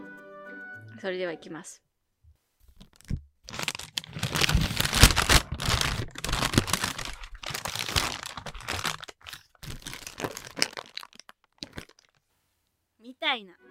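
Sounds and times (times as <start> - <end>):
speech: 1.0 - 1.9, 13.3 - 13.7
paper bag crinkling and rustling as it is opened and folded shut: 2.8 - 12.2.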